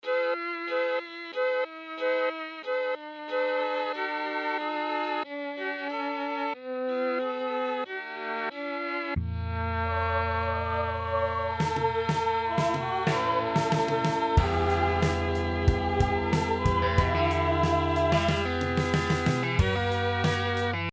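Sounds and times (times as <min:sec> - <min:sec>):
mellotron micro strings: 0:00.0 - 0:20.9.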